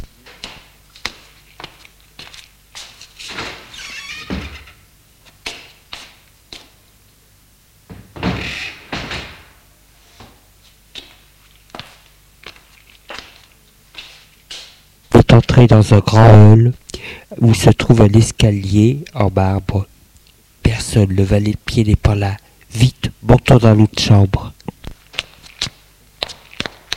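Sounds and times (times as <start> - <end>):
glass-paned French window of a house being unlatched and opened: 3.2 - 4.9
speech: 15.6 - 16.8, 17.4 - 19.9, 20.9 - 24.4.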